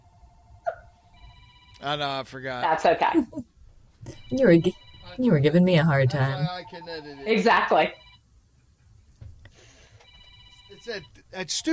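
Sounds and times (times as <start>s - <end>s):
office phone ringing: 1.0s - 3.2s, 4.1s - 8.2s, 9.9s - 11.7s
speech: 1.8s - 3.5s, 4.3s - 8.0s, 10.8s - 11.7s.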